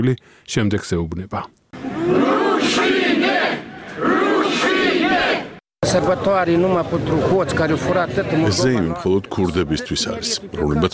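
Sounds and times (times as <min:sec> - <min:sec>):
speech: 0:00.0 - 0:04.1, 0:05.9 - 0:10.9
large crowd of protesters chanting at an anti-government demonstration in Moldova: 0:01.8 - 0:05.6.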